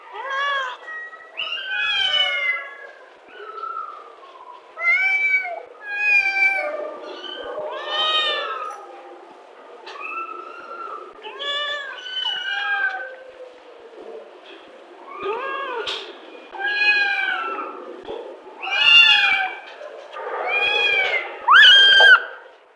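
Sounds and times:
kittens meowing in a kennel: 0.1 - 2.7, 4.8 - 8.8, 9.9 - 13.2, 15.1 - 17.8, 18.6 - 19.8, 20.4 - 22.4.

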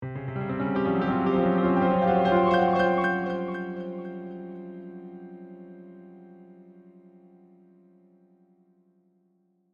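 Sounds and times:
dark mysterious horror piano flourish: 0.0 - 7.5.

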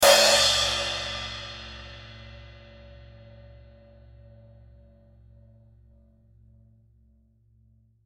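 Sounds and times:
thin 14 inch crash cymbal: 0.0 - 4.7.

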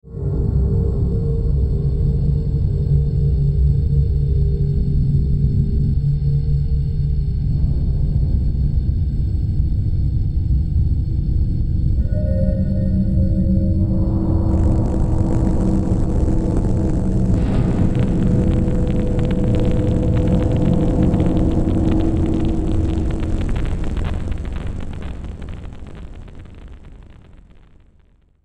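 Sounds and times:
ambient bass static: 0.0 - 28.4
delayed static hits: 7.4 - 28.4.

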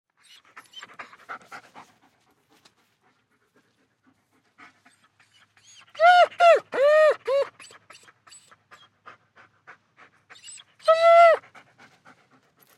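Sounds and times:
German Shepherd dog whining: 0.2 - 1.1, 4.9 - 9.0, 10.3 - 11.5
German Shepherd dog panting: 0.2 - 6.0, 7.4 - 12.7.

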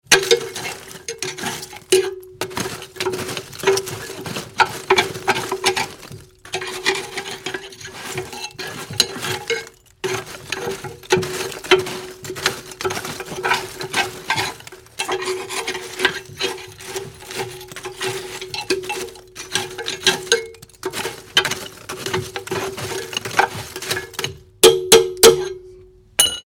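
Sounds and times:
raking in a cast iron fire grate in a stove: 0.0 - 24.6.

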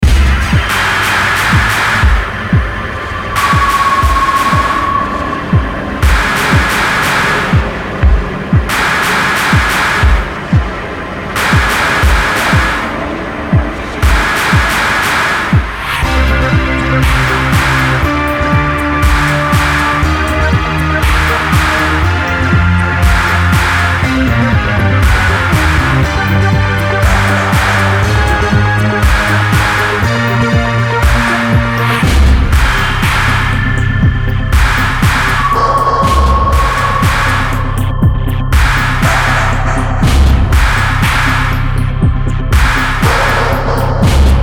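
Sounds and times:
haunting eerie synth beat loop: 0.0 - 44.4.

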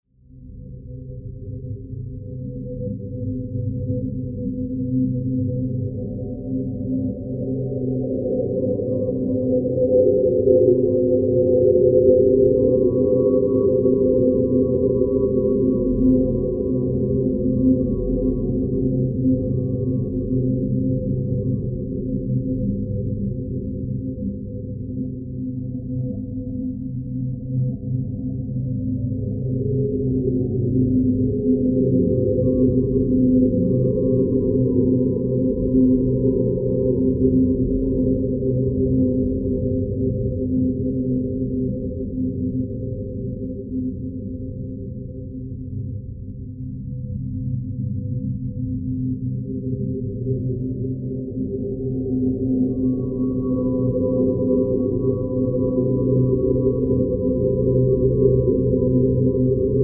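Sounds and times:
ethereal sci-fi alien whale song drone: 0.4 - 59.8.

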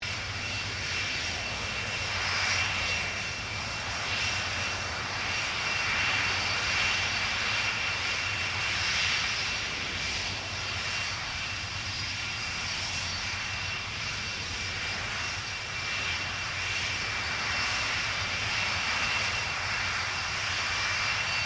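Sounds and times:
1989 Boeing 747-400 jumbo jet idling: 0.0 - 21.4.

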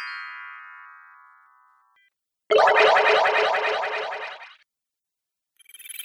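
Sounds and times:
magic spell sound effects: 2.5 - 4.5.

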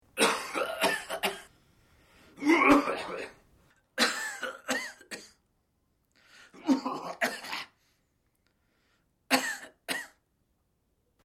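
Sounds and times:
man coughing and clearing throat: 0.2 - 1.5, 2.4 - 3.4, 4.0 - 5.4, 6.6 - 7.8, 9.3 - 10.2.

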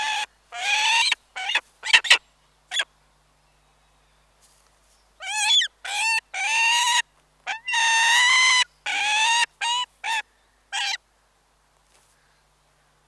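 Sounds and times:
peregrine falcon giving harsh wailing and chirrup calls: 0.0 - 2.2, 5.2 - 11.0.

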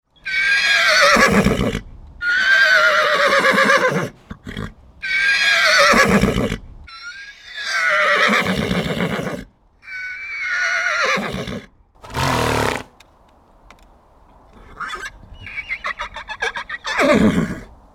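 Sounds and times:
horse whinnying: 0.2 - 13.0, 14.6 - 17.7
horse breathing: 12.0 - 13.0.

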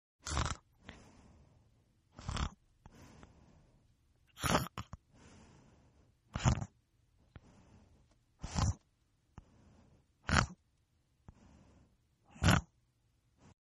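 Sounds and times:
person snoring: 0.2 - 1.4, 2.1 - 3.4, 4.3 - 5.7, 6.3 - 6.7, 7.4 - 8.8, 10.2 - 10.6, 11.3 - 12.8.

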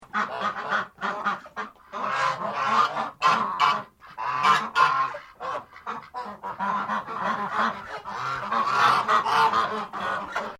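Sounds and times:
Australian ducks: 0.0 - 10.5.

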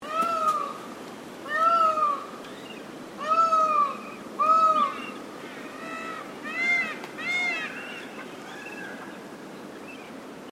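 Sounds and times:
steady background hiss: 0.0 - 10.5
Indian peafowl giving loud wailing cries: 1.4 - 9.1.

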